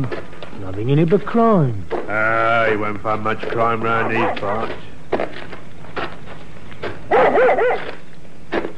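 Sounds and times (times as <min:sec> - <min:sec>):
speech: 0:00.0 - 0:05.4, 0:07.2 - 0:08.0
dog barking excitedly: 0:04.0 - 0:04.4, 0:07.1 - 0:08.0.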